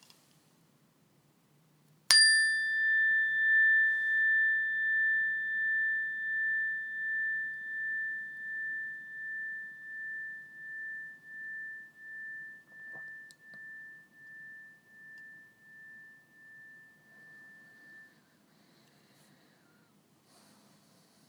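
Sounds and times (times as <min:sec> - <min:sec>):
meditation bell struck and ringing: 0:02.1 - 0:18.2.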